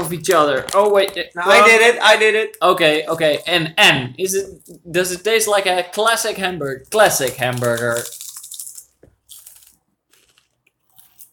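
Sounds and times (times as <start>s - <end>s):
speech: 0.0s - 8.2s
fish chip being bitten and chewed: 7.0s - 11.3s.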